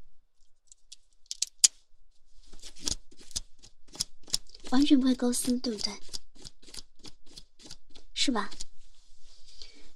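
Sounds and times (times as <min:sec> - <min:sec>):
pen scratching across synthetic stocking fabric: 0:02.5 - 0:08.8
speech: 0:04.7 - 0:06.1, 0:08.2 - 0:08.6.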